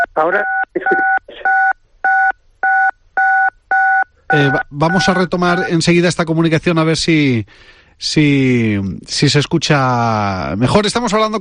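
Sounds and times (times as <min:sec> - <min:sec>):
telephone keypad tones from keys pressed during a phone call: 0:00.0 - 0:05.7
speech: 0:00.2 - 0:01.5, 0:04.3 - 0:11.4.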